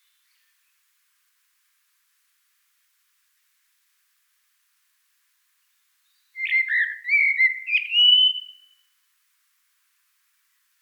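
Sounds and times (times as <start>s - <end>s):
common blackbird singing a mellow fluted phrase: 6.4s - 8.8s.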